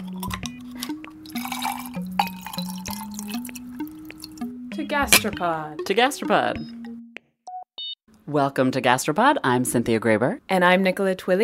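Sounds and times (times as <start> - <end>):
gin and tonic water being poured into a glass for a cocktail: 0.0 - 4.5
speech: 4.8 - 6.8, 8.3 - 11.4.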